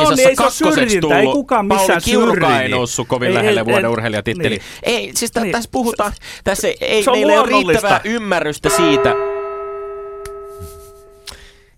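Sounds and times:
speech: 0.1 - 9.3
gong struck to end debate round: 8.7 - 11.2.

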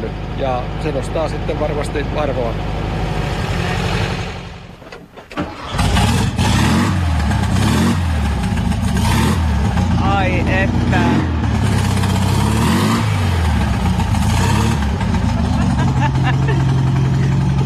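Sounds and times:
car engine cranking, catching and idling: 0.0 - 17.6
speech: 0.1 - 3.0
laughter: 14.8 - 17.6.

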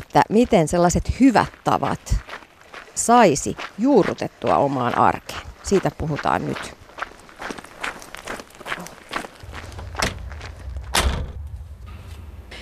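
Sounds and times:
footsteps: 0.0 - 12.3
speech: 0.1 - 2.3, 3.0 - 6.8
low steady rumble: 9.4 - 12.6
gym door opening with thuds: 9.8 - 11.4.

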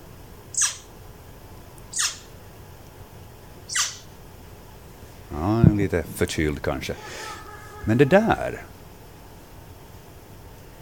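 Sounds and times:
boreal owl sneezing: 0.6 - 0.8, 1.9 - 2.3, 3.7 - 4.0, 6.9 - 7.9
speech: 5.3 - 8.8.

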